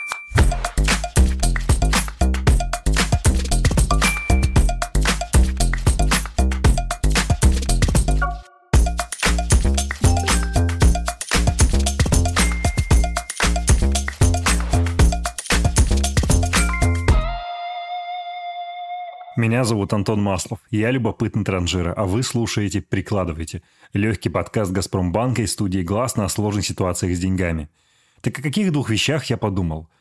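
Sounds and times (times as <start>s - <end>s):
steady driving beat: 0.4s - 17.3s
upbeat podcast theme jingle with bright bell-like chimes: 3.9s - 4.8s, 8.2s - 13.8s, 16.5s - 17.1s
speech: 19.5s - 29.9s.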